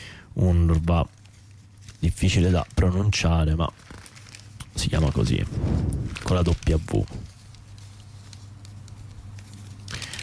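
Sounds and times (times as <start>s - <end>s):
steady low hum: 0.0s - 10.2s
speech: 0.4s - 1.2s, 2.0s - 4.0s, 4.8s - 7.3s
newspaper page being handled and rustling: 0.5s - 5.4s, 6.0s - 10.2s.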